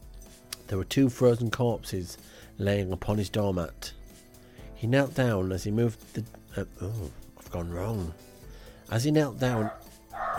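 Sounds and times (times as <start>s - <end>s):
speech: 0.7s - 4.0s, 4.8s - 8.3s, 8.9s - 9.8s
female dog barking and yelping excitedly at the door: 9.4s - 10.3s.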